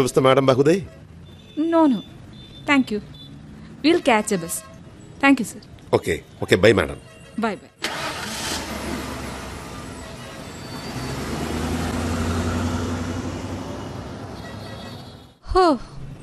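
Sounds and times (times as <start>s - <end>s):
speech: 0.0s - 1.0s, 1.6s - 3.2s, 3.8s - 8.0s, 15.6s - 15.9s
police jeep engine rumble driving away: 7.8s - 14.4s.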